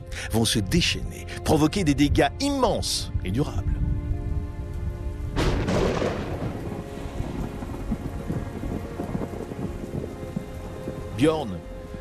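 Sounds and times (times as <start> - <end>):
speech: 0.2 - 3.8, 11.2 - 11.7
heavy rain pouring: 5.3 - 11.9
loud crack of thunder rumbling: 5.4 - 11.2.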